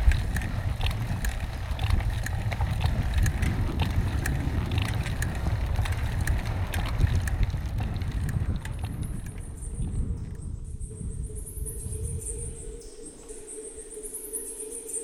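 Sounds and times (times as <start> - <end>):
faint scattered ticks: 0.0 - 10.4
harmattan wind roaring: 0.0 - 12.8.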